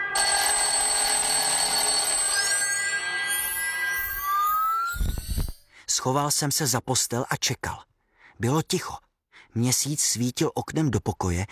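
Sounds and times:
electronic alarm clock ringing: 0:00.2 - 0:05.7
speech: 0:06.0 - 0:11.5.

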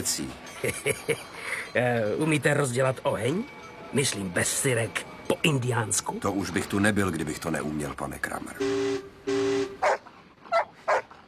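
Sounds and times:
speech: 0:00.0 - 0:09.5
small dog barking: 0:09.8 - 0:11.1.

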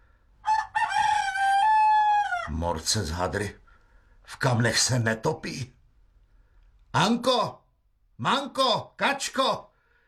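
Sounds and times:
rooster crowing: 0:00.4 - 0:02.6
speech: 0:02.5 - 0:03.6, 0:04.3 - 0:05.8, 0:06.9 - 0:07.6, 0:08.2 - 0:09.7.

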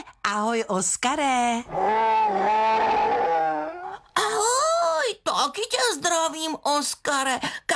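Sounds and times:
speech: 0:00.4 - 0:03.6, 0:05.4 - 0:07.7
bear growling in greeting at a kindergarten: 0:01.7 - 0:04.1.

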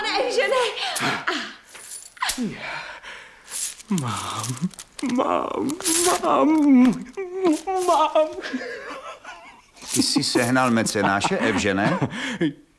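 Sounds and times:
speech: 0:00.7 - 0:01.3, 0:02.4 - 0:02.9, 0:03.9 - 0:08.9, 0:09.9 - 0:12.6
gold coins jingling in stuffed bags: 0:01.7 - 0:02.3, 0:03.5 - 0:05.0, 0:05.8 - 0:06.4, 0:07.0 - 0:08.2, 0:09.8 - 0:10.8
laughter: 0:07.6 - 0:12.6.

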